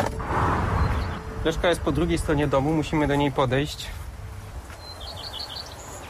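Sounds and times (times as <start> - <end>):
common redstart singing: 0.1 - 3.4, 4.6 - 6.0
speech: 1.5 - 4.0.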